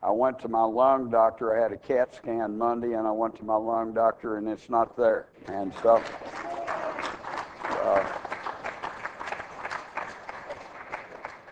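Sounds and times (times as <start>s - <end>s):
speech: 0.1s - 6.6s
audience applause at a church service: 5.7s - 11.5s.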